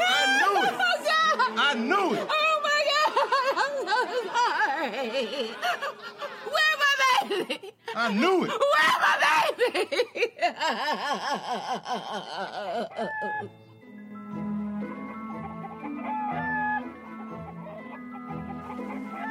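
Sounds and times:
steady music: 0.0s - 6.4s, 10.6s - 19.2s
laughter: 0.0s - 13.5s
speech: 5.0s - 13.7s
rooster crowing: 15.2s - 19.2s.

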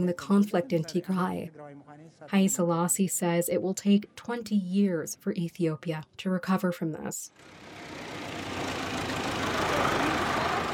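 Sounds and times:
speech: 0.0s - 8.6s
large truck engine rumbling: 7.4s - 10.7s.

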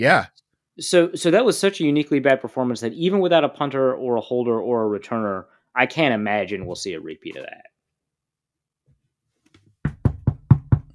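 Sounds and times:
speech: 0.0s - 7.7s
knuckles knocking on a wooden desk for luck: 9.8s - 10.9s.

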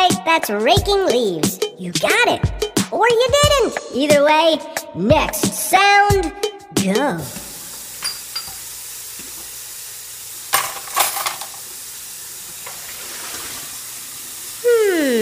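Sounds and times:
speech: 0.4s - 7.4s
faucet running into a sink: 7.2s - 15.2s
crockery clinking and knocking while dishes are washed in a sink: 8.0s - 8.7s, 10.5s - 11.5s.

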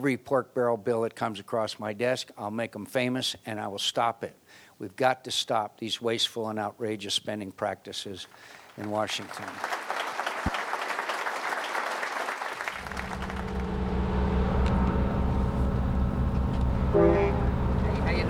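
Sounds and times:
speech: 0.0s - 10.6s
crowd clapping: 8.6s - 13.8s
heavy campaign bus engine rumbling as it pulls away: 12.7s - 18.2s
campaign bus horn toot: 16.8s - 17.8s.

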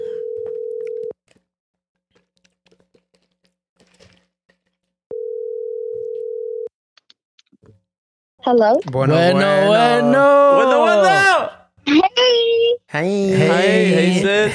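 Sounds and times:
phone call ringing tone: 0.0s - 1.2s, 5.1s - 6.7s
speech: 8.5s - 11.5s, 12.9s - 14.5s.

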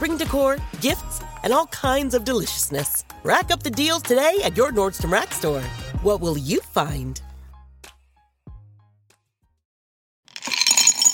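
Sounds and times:
speech: 0.1s - 7.3s
jelly beans pouring into a candy bowl: 10.3s - 11.1s.

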